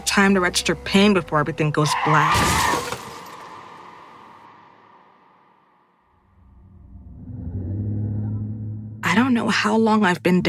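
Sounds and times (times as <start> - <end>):
speech: 0.1 - 2.9, 9.5 - 10.4
car crash as a car slams into something: 2.2 - 5.6
breaking glass: 2.4 - 3.6
deep heavy rumble: 6.3 - 10.4.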